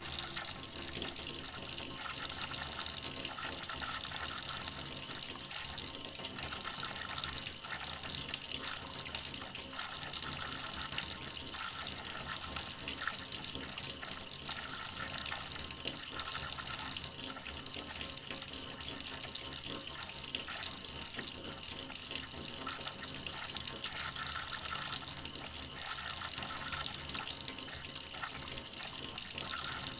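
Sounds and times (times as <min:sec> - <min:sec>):
water from a tap into a basin: 0:00.0 - 0:29.9.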